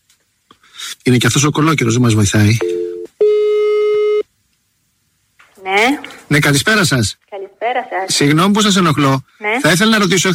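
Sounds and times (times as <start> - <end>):
speech: 1.0 - 2.8, 6.3 - 7.3, 8.0 - 10.3
telephone line tone as a radio station places an outgoing call: 2.6 - 4.2.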